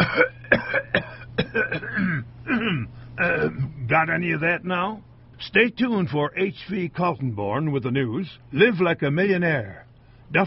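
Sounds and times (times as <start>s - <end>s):
person coughing and clearing their throat: 0.0s - 3.9s
low steady hum: 0.0s - 10.4s
speech: 4.0s - 10.4s.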